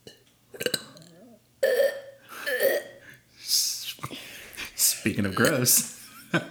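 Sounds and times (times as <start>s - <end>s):
loud drawn-out gurgling burp: 0.6s - 3.0s, 5.2s - 5.7s
speech: 5.0s - 6.4s.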